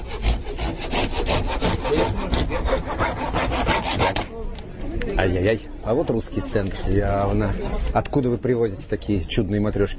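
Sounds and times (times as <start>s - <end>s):
saw cutting through wood: 0.0s - 4.3s
speech: 5.2s - 9.9s.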